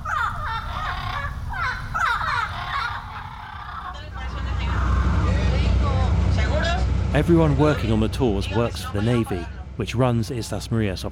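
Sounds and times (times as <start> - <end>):
green parrots squawking in trees on the Islas Marias islands: 0.0 - 5.6
steady low rumble: 3.4 - 11.1
speech: 7.2 - 11.1.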